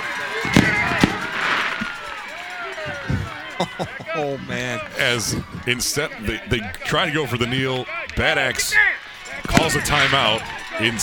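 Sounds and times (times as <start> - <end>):
crowd murmuring: 0.0 - 11.0
fireworks bangs in a noisy open space: 0.4 - 2.3, 9.4 - 11.0
faint whistling streaks of fireworks: 0.5 - 2.3
laughter: 2.7 - 8.7
speech: 4.2 - 8.9, 9.6 - 11.0.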